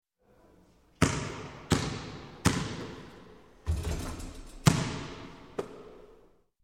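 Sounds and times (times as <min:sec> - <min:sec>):
basketball shot and miss: 0:01.0 - 0:03.1, 0:03.7 - 0:05.9.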